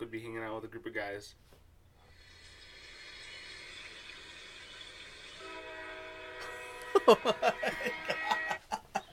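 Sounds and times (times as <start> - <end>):
speech: 0.0 - 1.6, 7.0 - 8.3
train passing: 4.9 - 8.6
train horn: 5.4 - 8.6
laughter: 6.8 - 9.1.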